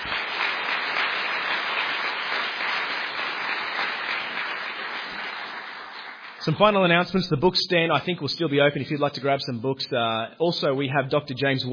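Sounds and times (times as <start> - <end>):
crowd applauding: 0.0 - 6.9
speech: 6.4 - 11.7.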